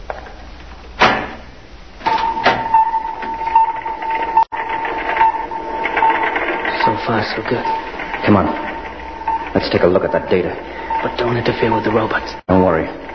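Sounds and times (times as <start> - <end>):
loud steady mechanical whirring hum with a high whine: 0.0 - 13.1
door clunk: 1.0 - 4.0
speech: 7.1 - 8.7, 9.5 - 13.0.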